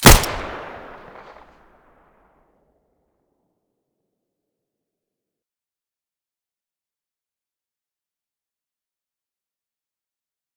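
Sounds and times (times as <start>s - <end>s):
Five-seven pistol gunshot: 0.0s - 1.5s.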